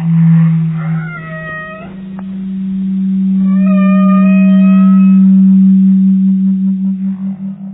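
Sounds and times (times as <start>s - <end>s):
deep underwater drone: 0.0s - 7.7s
long wavering tonal whale song calls: 0.0s - 7.7s.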